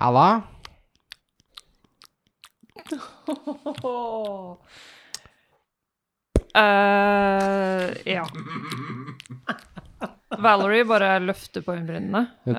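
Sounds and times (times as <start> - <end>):
speech: 0.0 - 0.5, 2.9 - 5.0, 6.6 - 9.7, 10.4 - 12.5
wet mouth smacks of a nurse chewing gum at a reception desk: 0.5 - 5.4, 7.3 - 10.2
laughter: 2.8 - 4.6, 7.0 - 11.2
drawn-out voiced hum or murmur: 6.6 - 9.4.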